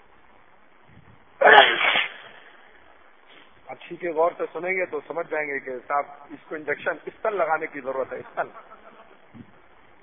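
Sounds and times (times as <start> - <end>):
faint noise: 0.0 - 10.0
sneeze: 1.4 - 2.6
speech: 3.9 - 8.8.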